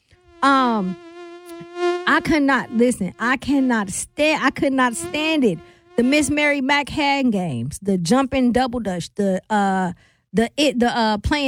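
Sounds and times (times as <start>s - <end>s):
mosquito whining at one pitch: 0.0s - 6.6s
speech: 0.4s - 1.1s, 2.1s - 11.4s.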